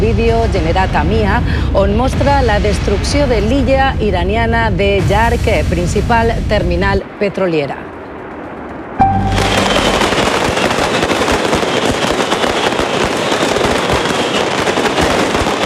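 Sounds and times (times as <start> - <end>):
speech: 0.1 - 7.8
rockets launched at a night gunpowder festival crackling and banging: 9.0 - 15.6.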